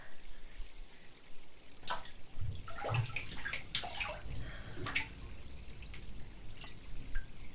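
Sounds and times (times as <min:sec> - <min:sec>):
bath water dripping and trickling: 0:00.8 - 0:07.5
bath water sloshing as a person steps in: 0:01.8 - 0:07.5.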